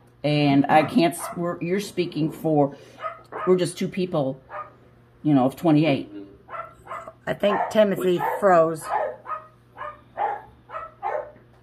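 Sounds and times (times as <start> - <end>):
speech: 0.2 - 4.5, 5.2 - 6.2, 7.2 - 9.0
dogs barking in short raspy bursts: 0.7 - 1.6, 2.9 - 3.8, 4.4 - 4.8, 6.4 - 11.5.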